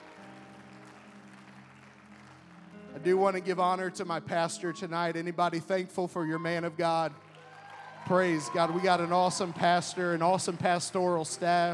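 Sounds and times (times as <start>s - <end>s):
crowd applauding: 0.0s - 4.0s, 6.8s - 11.7s
speech: 3.0s - 7.2s, 8.1s - 11.7s.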